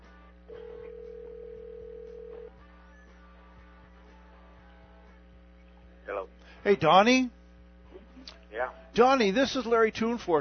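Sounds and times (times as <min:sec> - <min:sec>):
faint low hum: 0:00.0 - 0:10.3
electronic phone ring tone heard through the earpiece: 0:00.5 - 0:02.5
speech: 0:06.2 - 0:07.4, 0:08.6 - 0:10.3.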